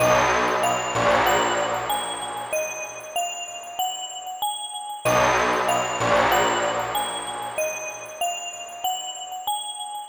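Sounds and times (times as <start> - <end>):
serious tension stabs in D sharp: 0.0 - 3.0, 5.1 - 7.6.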